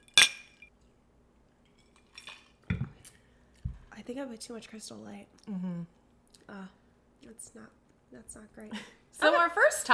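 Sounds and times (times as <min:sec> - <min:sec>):
drinking glasses clinking in a toast: 0:00.0 - 0:00.7
speech: 0:04.1 - 0:09.9.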